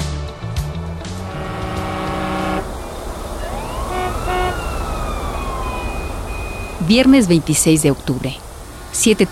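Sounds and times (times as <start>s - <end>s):
car horns blaring in city traffic: 0.1s - 6.8s
tires hissing on wet city road: 0.1s - 7.8s, 8.3s - 9.0s
rainfall in the city: 0.3s - 9.3s
siren rising and falling: 1.1s - 7.5s
speech: 6.9s - 9.3s.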